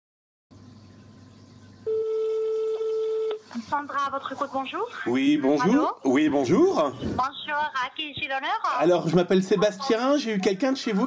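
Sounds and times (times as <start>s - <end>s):
low hum: 0.5s - 11.0s
electronic telephone ringing tone on an outgoing call: 1.8s - 3.4s
speech: 3.6s - 11.0s.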